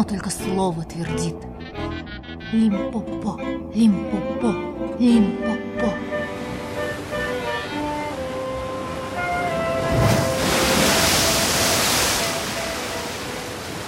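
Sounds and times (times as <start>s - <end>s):
speech: 0.0s - 6.2s
stormy sea waves crashing: 6.0s - 13.8s.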